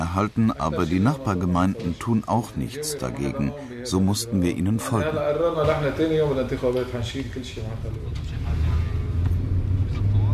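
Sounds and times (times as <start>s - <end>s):
speech: 0.2s - 8.3s
car driving with low steady engine rumble and road drone: 6.9s - 10.3s.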